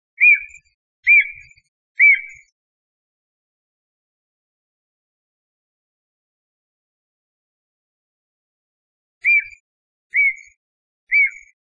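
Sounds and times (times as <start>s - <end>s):
Japanese green woodpecker: 0.2s - 2.5s, 10.2s - 11.5s.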